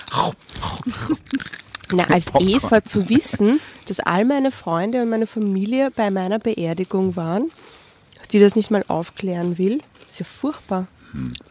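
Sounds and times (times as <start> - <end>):
crisp snack being chewed: 0.0 - 2.8
speech: 0.2 - 7.6, 8.3 - 11.4.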